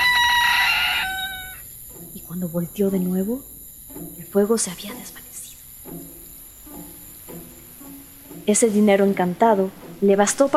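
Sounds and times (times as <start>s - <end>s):
rooster crowing: 0.0s - 1.9s
speech: 2.3s - 3.6s, 4.3s - 5.2s, 8.5s - 10.5s.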